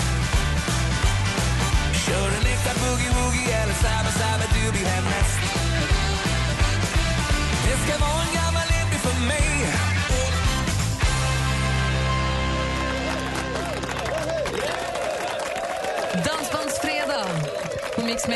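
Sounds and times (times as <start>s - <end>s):
guests in a radio studio clapping: 0.0s - 10.3s, 11.7s - 18.3s
music with sustained low tones: 0.0s - 14.5s
group of guests in a radio studio cheering and whooping: 11.8s - 18.3s.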